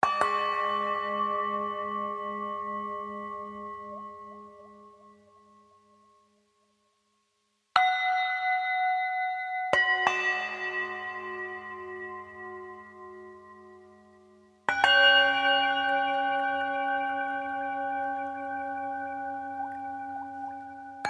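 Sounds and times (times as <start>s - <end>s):
village bell: 0.0s - 6.9s, 7.8s - 21.0s.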